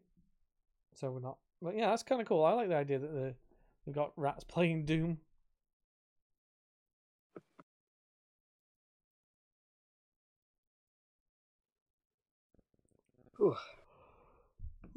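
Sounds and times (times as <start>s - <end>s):
speech: 1.0s - 5.3s, 13.4s - 13.8s
person yawning: 13.4s - 13.8s.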